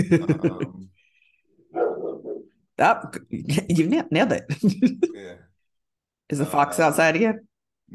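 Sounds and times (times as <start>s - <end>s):
laughter: 0.0s - 0.9s
speech: 0.0s - 0.9s, 2.8s - 5.4s, 6.3s - 7.9s
dogs barking in yaps: 1.7s - 2.5s.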